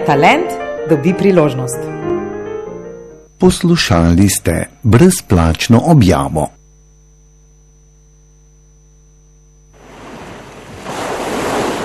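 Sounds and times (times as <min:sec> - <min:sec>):
speech: 0:00.1 - 0:02.1, 0:03.4 - 0:06.6
sea waves: 0:09.8 - 0:11.8.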